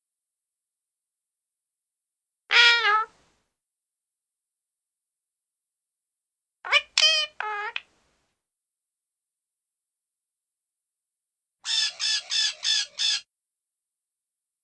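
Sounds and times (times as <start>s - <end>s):
small parrot rasping squawks: 2.5s - 3.1s, 6.7s - 7.8s, 11.6s - 13.3s.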